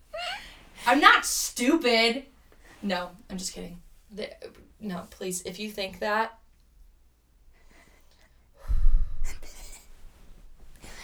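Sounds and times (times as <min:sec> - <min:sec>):
speech: 0:00.9 - 0:06.4
deep breathing close to the microphone: 0:07.6 - 0:11.0.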